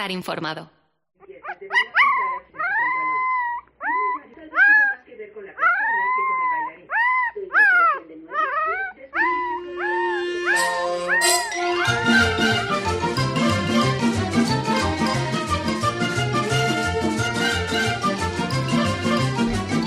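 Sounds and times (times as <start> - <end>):
speech: 0.0 - 0.8
puppy whimpering: 1.4 - 5.0, 5.6 - 12.6
dense loud music: 9.2 - 19.8.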